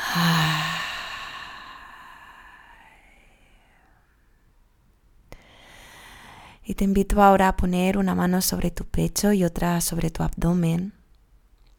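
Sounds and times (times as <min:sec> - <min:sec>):
slow deep breath in through the nose and out through the mouth: 0:00.0 - 0:04.4, 0:05.4 - 0:06.6
speech: 0:00.2 - 0:00.7, 0:06.7 - 0:11.0.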